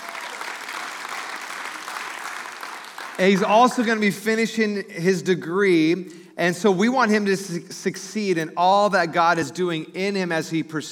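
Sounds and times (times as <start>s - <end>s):
church audience applause: 0.0s - 3.8s
speech: 3.2s - 10.9s.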